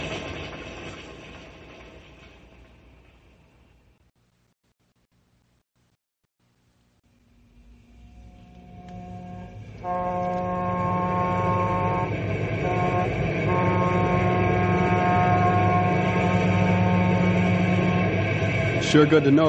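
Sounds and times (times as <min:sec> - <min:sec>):
passenger train rumbling along rails: 0:00.0 - 0:04.1, 0:07.2 - 0:19.4
sustained horn-like tone from a train: 0:07.9 - 0:18.2
speech: 0:18.9 - 0:19.4.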